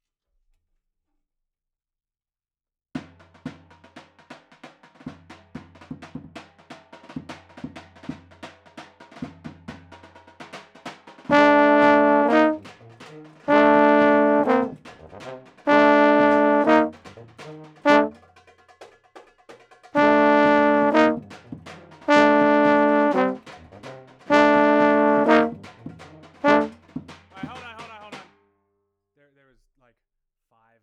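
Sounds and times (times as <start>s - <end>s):
euphoniums playing: 11.3s - 12.6s, 13.5s - 14.8s, 15.7s - 17.0s, 17.8s - 18.1s, 20.0s - 21.3s, 22.1s - 23.4s, 24.3s - 25.7s, 26.4s - 26.8s.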